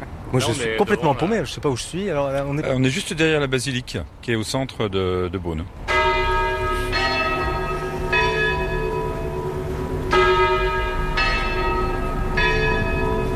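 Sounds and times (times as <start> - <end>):
speech: 0.3 - 5.9
church bells ringing: 5.9 - 13.3.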